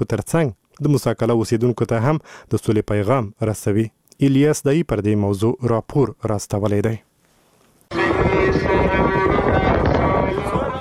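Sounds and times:
speech: 0.0s - 7.1s
strong wind blowing dust across the microphone: 7.9s - 10.8s.

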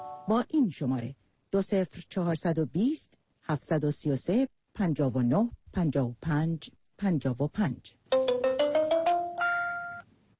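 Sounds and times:
speech: 0.3s - 8.0s
text message notification tone on a phone: 8.1s - 10.0s.

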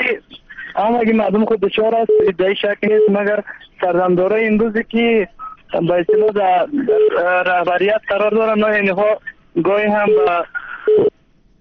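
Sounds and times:
faint higher telephone line hum: 0.0s - 11.5s
speech: 0.8s - 11.1s
telephone line beep after a caller's line is cut off: 2.1s - 3.2s, 5.4s - 7.2s, 10.0s - 11.1s.

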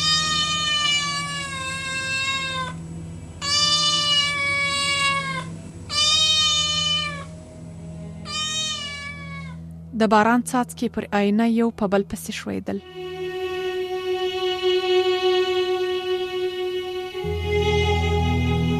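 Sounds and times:
cat meowing on a window ledge: 0.0s - 2.8s, 3.4s - 7.3s, 8.2s - 9.6s
faint steady low hum: 0.0s - 18.7s
speech: 10.0s - 13.0s.

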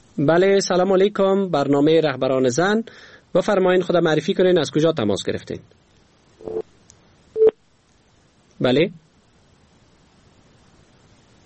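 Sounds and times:
speech: 0.2s - 5.8s, 6.4s - 6.6s, 8.6s - 9.0s
telephone call disconnected tone as two electronic beeps: 6.4s - 6.6s, 7.4s - 7.6s.

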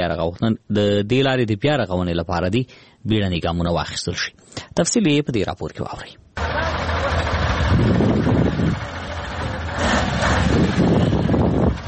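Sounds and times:
speech: 0.0s - 9.0s
large trucks grinding along a mud-covered flood-damaged highway: 6.4s - 11.8s
rough wind noise: 7.2s - 11.8s.

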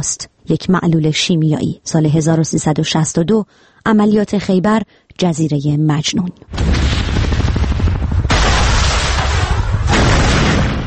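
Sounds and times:
speech: 0.0s - 6.8s
loud explosions: 6.5s - 10.8s.

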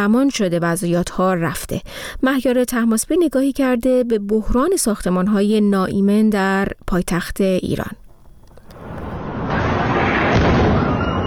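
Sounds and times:
speech: 0.0s - 8.0s
building fire roaring: 8.6s - 11.2s
explosion blasts during a building fire: 8.8s - 11.2s.

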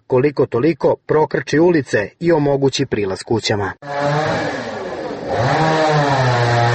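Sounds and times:
speech: 0.1s - 4.7s
chainsaw cutting a fallen log blocking the road to a house: 3.8s - 6.7s.

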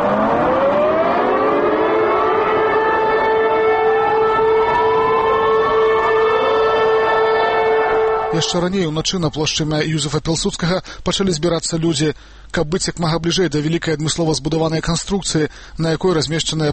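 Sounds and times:
memorial air-raid sirens wailing in Warsaw Poland: 0.0s - 9.1s
speech: 8.4s - 16.7s.

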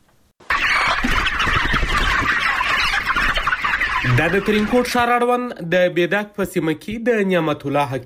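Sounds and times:
chickens clucking at a poultry farm: 0.4s - 5.7s
speech: 4.1s - 8.0s.

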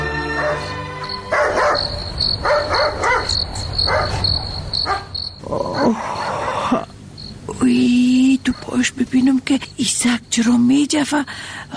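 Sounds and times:
crickets chirping at night: 0.1s - 11.6s
dog barking at night: 0.3s - 6.6s
speech: 10.4s - 11.7s.

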